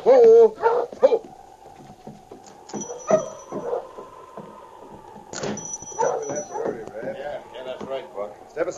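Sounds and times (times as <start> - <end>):
sled dog team barking and yipping: 0.0 - 6.8
faint voices: 0.0 - 8.7.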